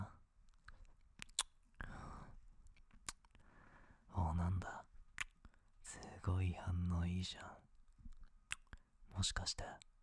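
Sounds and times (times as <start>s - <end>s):
ASMR ear-licking wet mouth clicks and smacks: 0.5s - 1.8s, 2.6s - 3.4s, 5.1s - 5.6s, 8.0s - 8.9s
speech: 6.3s - 7.6s, 9.2s - 9.9s.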